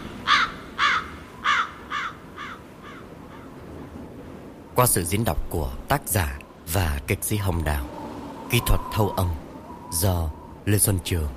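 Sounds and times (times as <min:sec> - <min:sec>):
faint hiss: 0:00.0 - 0:11.3
crows cawing: 0:00.2 - 0:03.6
speech: 0:04.8 - 0:11.3.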